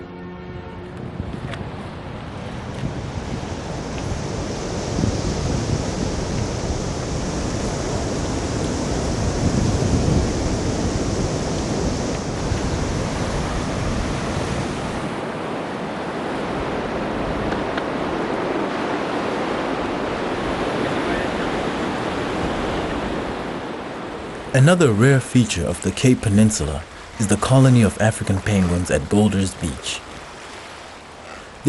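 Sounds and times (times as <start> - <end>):
wind rushing over the microphone: 0.8 - 24.5
ocean surf crashing on a rocky coastline: 1.8 - 31.6
speech: 24.6 - 30.1.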